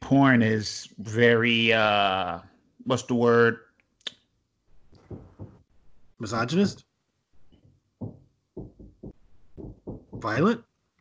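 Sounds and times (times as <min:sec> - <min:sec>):
speech: 0:00.1 - 0:03.6, 0:06.2 - 0:06.9, 0:10.2 - 0:10.7
dull heavy knocks on a door: 0:05.0 - 0:05.7, 0:07.6 - 0:10.5.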